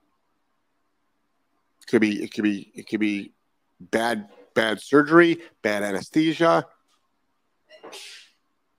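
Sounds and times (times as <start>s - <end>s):
speech: 1.9s - 6.8s, 7.8s - 8.2s
single sharp sneeze: 7.8s - 8.4s.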